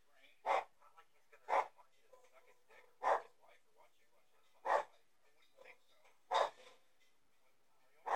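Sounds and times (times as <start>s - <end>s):
faint voices talking: 0.0s - 8.1s
dog barking: 0.4s - 0.8s, 1.5s - 2.3s, 2.9s - 3.4s, 4.6s - 5.0s, 6.3s - 6.8s.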